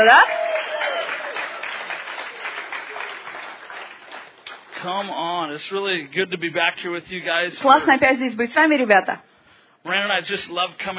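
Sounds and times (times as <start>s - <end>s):
speech: 0.0s - 0.4s, 4.8s - 10.9s
crowd applauding: 0.0s - 5.1s.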